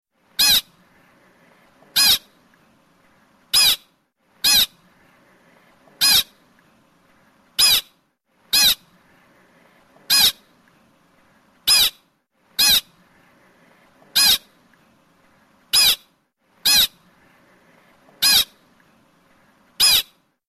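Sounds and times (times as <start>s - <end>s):
American pika calling: 0.4s - 0.7s, 2.0s - 2.3s, 3.5s - 4.8s, 6.0s - 6.3s, 7.6s - 7.9s, 8.5s - 8.8s, 10.1s - 10.4s, 11.7s - 12.0s, 12.6s - 12.9s, 14.2s - 14.5s, 15.7s - 17.0s, 18.2s - 18.6s, 19.8s - 20.2s.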